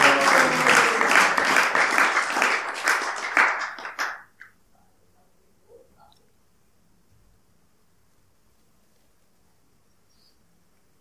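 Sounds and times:
audience applause: 0.0 - 4.4.

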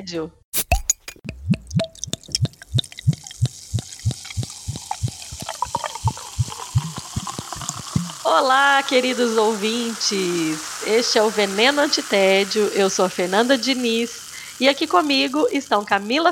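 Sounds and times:
speech: 0.0 - 0.4, 8.3 - 16.2
drink glugging from a bottle into a cup: 0.6 - 16.2.

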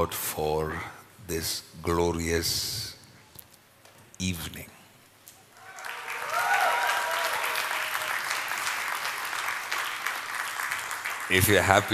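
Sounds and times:
speech: 0.0 - 2.9, 4.2 - 4.8, 11.3 - 11.9
audience clapping at an evening church service: 5.6 - 11.9.

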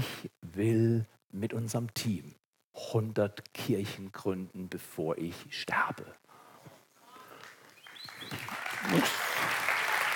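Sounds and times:
speech: 0.6 - 6.2, 8.3 - 9.2
audience applause: 7.4 - 10.1.

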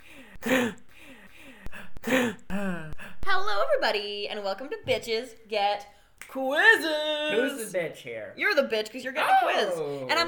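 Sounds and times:
edited remix of breathing, sharp inhales and sighing exhales: 0.0 - 3.3
speech: 3.4 - 10.2.

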